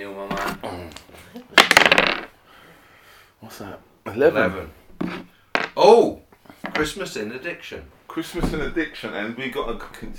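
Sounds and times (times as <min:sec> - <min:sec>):
speech: 0:00.0 - 0:01.2, 0:03.5 - 0:04.8, 0:05.8 - 0:06.2, 0:06.8 - 0:10.1
faint noise: 0:00.0 - 0:10.1
dice rattling and clattering across a hard surface: 0:01.5 - 0:02.3, 0:05.0 - 0:05.8.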